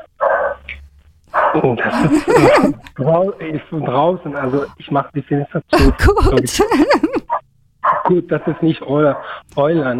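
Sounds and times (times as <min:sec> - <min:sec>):
dog barking: 0:00.2 - 0:00.7, 0:01.3 - 0:02.7, 0:07.3 - 0:09.4
speech: 0:01.6 - 0:07.2, 0:08.1 - 0:09.9
laughter: 0:01.9 - 0:03.6, 0:05.8 - 0:07.2.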